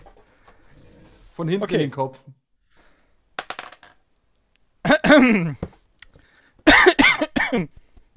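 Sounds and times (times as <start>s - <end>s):
speech: 1.4s - 2.4s, 5.1s - 5.7s, 7.5s - 7.8s
dice rolling on a table: 3.4s - 4.1s.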